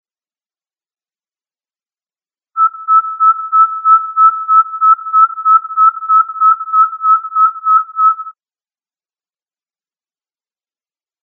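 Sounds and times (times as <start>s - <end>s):
Central American pygmy owl calling: 2.6s - 8.3s.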